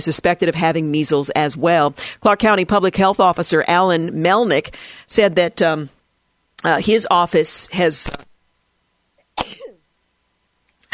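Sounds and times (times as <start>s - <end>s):
speech: 0.0s - 6.0s, 6.6s - 8.3s
person sneezing during a broadcast: 9.4s - 9.8s.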